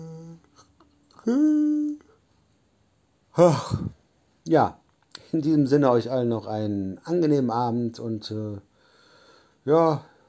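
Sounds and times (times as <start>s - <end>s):
person yawning: 0.0s - 2.1s, 3.4s - 4.0s
speech: 1.2s - 1.9s, 3.4s - 8.7s, 9.6s - 10.1s.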